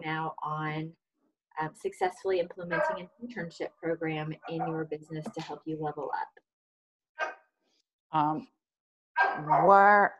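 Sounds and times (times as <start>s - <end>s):
speech: 0.0s - 1.0s, 1.6s - 6.4s, 8.1s - 8.6s, 9.2s - 10.1s
dog barking: 2.7s - 3.0s, 9.2s - 9.8s.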